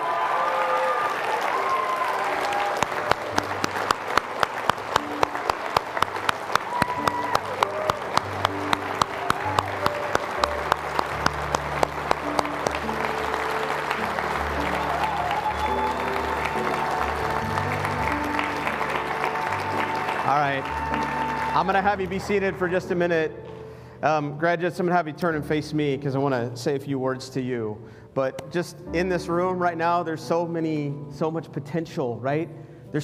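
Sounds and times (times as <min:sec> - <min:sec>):
large crowd applauding at a high school graduation ceremony: 0:00.0 - 0:23.0
speech: 0:21.7 - 0:23.4, 0:24.0 - 0:33.0.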